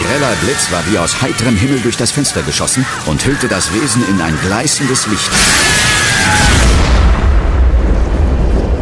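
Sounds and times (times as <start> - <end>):
speech: 0.1 - 6.8
loud explosion with a crackling blast and deep rumble: 5.3 - 8.7.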